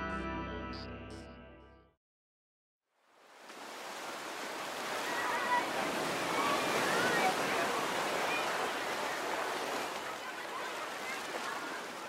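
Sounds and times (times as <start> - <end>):
ocean waves washing onto a beach on a sunny day: 3.0 - 12.0.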